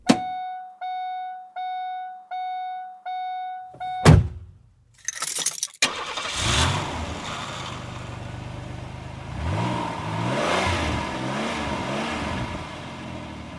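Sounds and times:
car warning chime beeping: 0.0s - 4.2s
car door thudding shut: 4.0s - 4.5s
car starter cranking: 5.0s - 7.4s
car engine idling loudly and revving: 5.9s - 13.5s.

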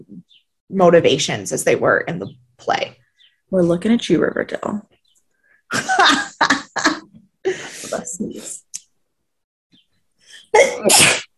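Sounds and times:
speech: 0.7s - 2.9s, 3.5s - 4.9s, 10.5s - 11.2s
laughter: 5.7s - 8.0s
person sneezing: 10.5s - 11.3s.

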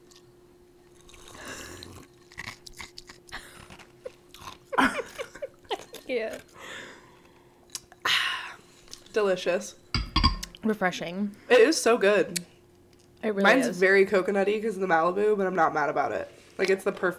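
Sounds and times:
ice cubes from a drink being bitten and chewed: 0.9s - 6.6s
person laughing: 4.7s - 6.0s
speech: 6.1s - 6.5s, 9.2s - 9.8s, 10.6s - 12.5s, 13.2s - 17.1s.

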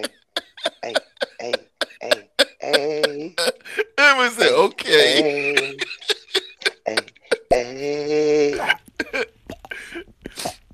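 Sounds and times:
long loud gravelly burp: 0.0s - 3.6s, 6.7s - 10.7s
laughter: 0.0s - 7.5s.

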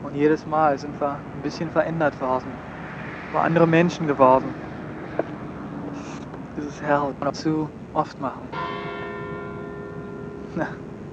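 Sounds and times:
speech: 0.2s - 2.7s, 3.3s - 4.6s, 6.6s - 8.7s, 10.6s - 10.8s
church bell ringing: 8.4s - 11.1s.

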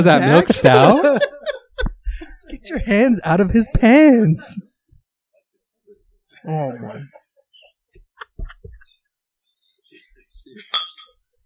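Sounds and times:
speech: 0.0s - 1.4s, 2.6s - 4.6s, 6.4s - 7.2s
laughter: 0.0s - 2.7s, 6.9s - 9.0s
glasses clinking in a toast: 10.6s - 11.2s.

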